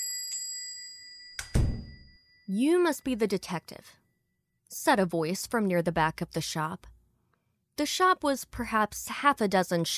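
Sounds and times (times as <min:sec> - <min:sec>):
shop door bell ringing as door opens: 0:00.0 - 0:03.0
speech: 0:02.5 - 0:04.0, 0:04.7 - 0:06.9, 0:07.8 - 0:09.9.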